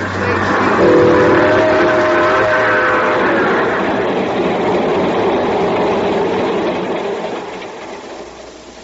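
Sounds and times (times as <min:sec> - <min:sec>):
tonal whine: 0:00.0 - 0:07.0
train engine rumbling while pulling away: 0:00.0 - 0:08.8.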